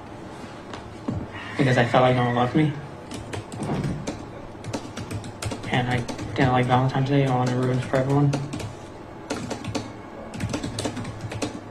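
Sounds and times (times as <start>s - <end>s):
speech: 1.6s - 2.8s, 5.7s - 8.5s
forceful rapid typing on a computer keyboard: 3.1s - 8.7s, 9.3s - 11.6s.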